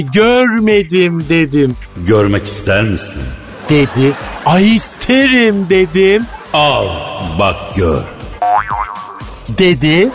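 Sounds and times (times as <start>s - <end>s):
speech: 0.0s - 8.8s, 9.5s - 10.1s
laughter: 2.1s - 8.4s
springy cartoon boing sound effect: 8.4s - 9.3s.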